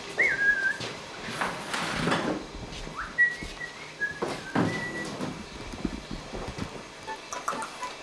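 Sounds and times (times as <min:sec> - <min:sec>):
magpie whistling chirps and harsh bursts in a kitchen: 0:00.2 - 0:00.8, 0:03.0 - 0:05.2
household rustling: 0:00.9 - 0:07.8.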